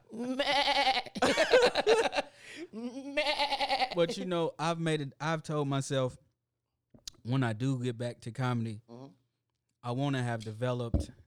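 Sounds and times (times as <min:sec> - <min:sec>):
wavering laugh-like vocal sounds: 0:00.0 - 0:04.2
sheep- or goat-like bleat: 0:00.3 - 0:01.2, 0:03.2 - 0:04.1
speech: 0:04.0 - 0:06.2, 0:07.2 - 0:09.0, 0:09.8 - 0:11.2.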